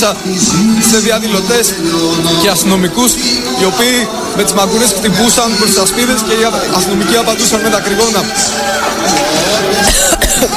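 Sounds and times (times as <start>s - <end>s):
speech: 0.0s - 10.5s
person coughing and spluttering as if choking: 9.9s - 10.5s.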